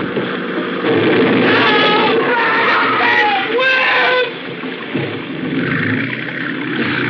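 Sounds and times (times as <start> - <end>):
boat ramming into a boat crowded with people: 0.0 - 7.0
churning water: 0.0 - 7.0
people including women and children screaming and wailing: 1.4 - 4.4.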